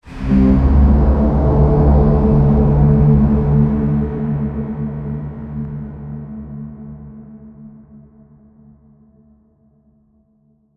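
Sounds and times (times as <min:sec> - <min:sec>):
horror braam effect: 0:00.0 - 0:06.7.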